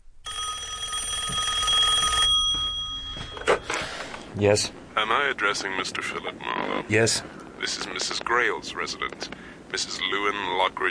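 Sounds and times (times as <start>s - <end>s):
faint room noise: 0.0s - 10.8s
telephone bell ringing: 0.2s - 4.1s
speech: 4.4s - 10.8s.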